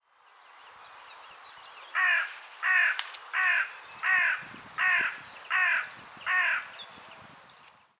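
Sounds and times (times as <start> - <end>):
Corvus corone carrion crow giving harsh downward-slurred caws: 2.0 - 6.8.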